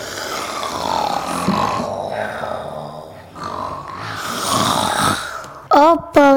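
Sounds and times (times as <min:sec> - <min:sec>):
sleeping wolf with a full belly snoring: 0:00.0 - 0:05.7.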